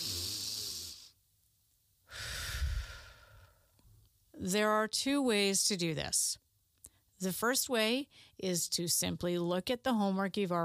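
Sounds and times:
deep breath with long airy inhale and slow breathy exhale: 0.0 - 1.2, 2.1 - 3.8
speech: 4.4 - 6.4, 7.2 - 10.6.

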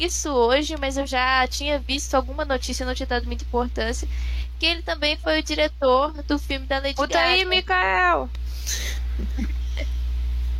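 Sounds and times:
speech: 0.0 - 9.9
steady low electrical hum: 0.0 - 10.5
heavy breath into a microphone: 4.1 - 4.6.

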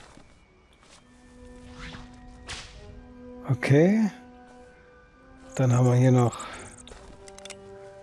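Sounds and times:
video game whip cracks: 1.8 - 2.8
speech: 3.5 - 4.2, 5.6 - 6.5.

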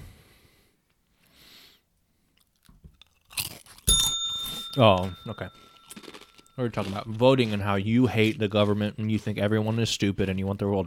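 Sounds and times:
crunchy chewing of chips and popcorn: 2.3 - 10.8
small bell ringing: 3.9 - 6.8
speech: 4.8 - 5.7, 6.6 - 10.8.

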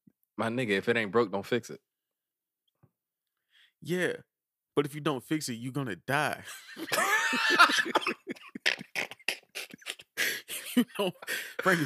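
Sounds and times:
speech: 0.4 - 1.9, 3.8 - 8.6, 10.8 - 11.8
wheezy, strained laugh: 6.4 - 11.8
harsh hacking coughs in a coughing fit: 7.4 - 10.1.

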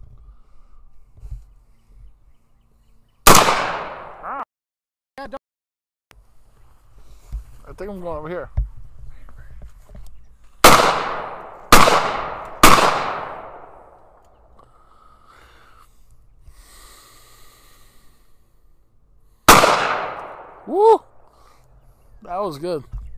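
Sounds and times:
gunshots from a semi-automatic gun: 3.3 - 4.2, 10.6 - 14.0, 19.5 - 20.6
speech: 5.2 - 5.4, 7.8 - 8.7, 22.3 - 23.0.

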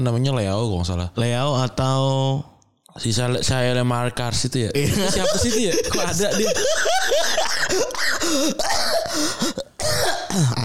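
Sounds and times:
speech: 0.0 - 10.6
laughter: 4.8 - 8.6
person coughing raspily: 5.4 - 10.6
throat clearing: 8.6 - 10.6.

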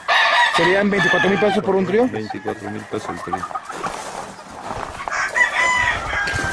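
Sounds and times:
rooster crowing: 0.0 - 2.7, 5.0 - 6.5
hens clucking: 0.0 - 6.5
speech: 0.6 - 3.7.

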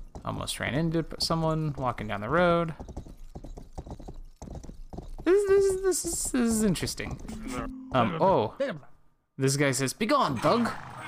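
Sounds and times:
horse hooves clip-clopping while riding: 0.0 - 7.4
speech: 0.3 - 3.0, 5.7 - 10.9.

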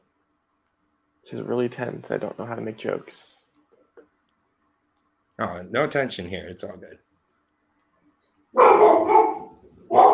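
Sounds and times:
speech: 1.2 - 3.4, 5.4 - 7.1
dog barking: 8.6 - 10.1.

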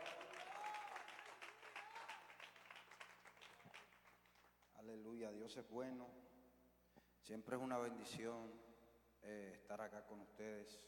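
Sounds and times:
a few voices rising over the clapping: 0.0 - 4.4
audience applauding loudly: 0.0 - 4.5
speech: 4.8 - 6.3, 7.2 - 10.8.

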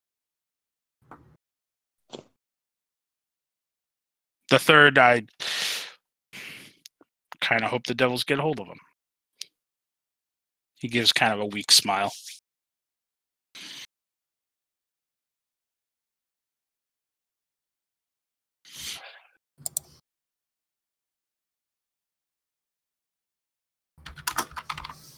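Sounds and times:
speech: 4.5 - 5.5, 7.5 - 8.9, 10.8 - 12.3
computer keyboard typing: 19.6 - 20.0, 24.0 - 25.1.

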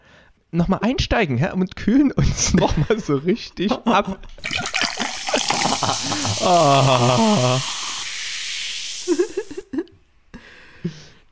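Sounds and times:
speech: 0.5 - 4.6, 5.8 - 7.8
laughter: 2.3 - 7.8, 9.0 - 9.9
loud fizzing hiss of a drink being opened: 4.9 - 9.7.

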